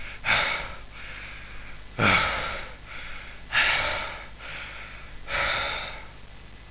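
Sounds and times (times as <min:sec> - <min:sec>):
fast breathing: 0:00.0 - 0:06.2.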